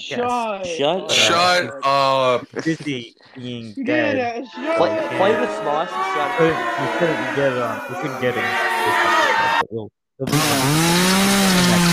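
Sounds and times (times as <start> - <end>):
speech: 0.0 - 11.9
slowed-down chainsaw: 10.3 - 11.9.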